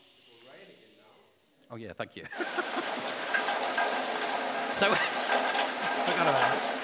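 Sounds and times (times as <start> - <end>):
speech: 1.7 - 2.8, 4.8 - 5.6
laughter: 2.2 - 3.3
steady rain falling: 2.3 - 6.8.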